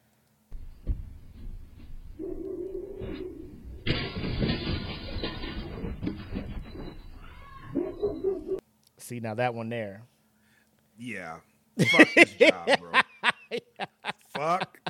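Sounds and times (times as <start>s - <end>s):
clattering and scrambling noise: 0.5s - 7.8s
glass door breaking as a dog jumps through: 3.8s - 7.4s
dog snarling and yelping: 7.6s - 8.6s
speech: 9.1s - 10.1s, 11.0s - 14.8s
laughter: 11.8s - 14.8s.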